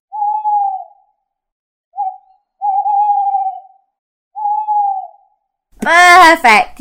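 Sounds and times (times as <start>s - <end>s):
owl hooting: 0.1s - 1.3s, 1.9s - 5.5s
speech: 5.8s - 6.7s.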